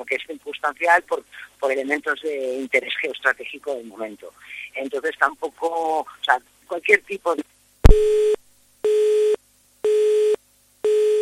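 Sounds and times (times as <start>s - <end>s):
speech: 0.0s - 8.4s
telephone busy signal beeps after a dropped call: 7.9s - 11.2s.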